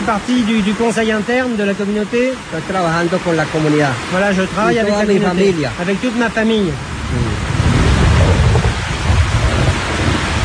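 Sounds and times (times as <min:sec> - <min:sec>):
speech: 0:00.0 - 0:07.5
steady loud rain pouring in a thunderstorm: 0:00.0 - 0:10.4
deep thunder rumbling: 0:06.8 - 0:10.4.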